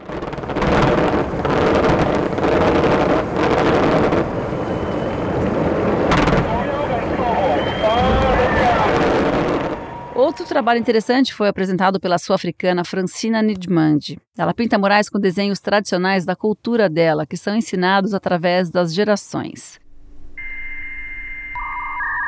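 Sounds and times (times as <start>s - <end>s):
rumbling windy background: 0.0s - 10.4s
booming fireworks bursts set off by an artist: 0.0s - 11.2s
rising fireworks whistles: 4.2s - 10.7s, 20.1s - 22.2s
speech: 10.6s - 19.8s.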